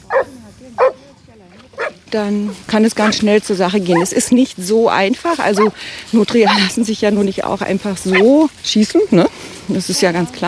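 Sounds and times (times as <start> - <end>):
Alpine Dachsbracke hunting dog barking: 0.0 - 1.0, 1.8 - 2.0, 3.9 - 4.2, 5.6 - 5.8, 8.1 - 8.3
speech: 2.1 - 10.4.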